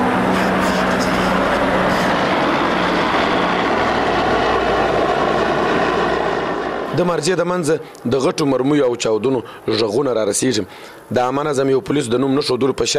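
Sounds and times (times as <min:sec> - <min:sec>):
military jet and large reconnaissance plane flying: 0:00.0 - 0:08.7
two military helicopters flying: 0:00.0 - 0:11.1
speech: 0:07.0 - 0:12.9.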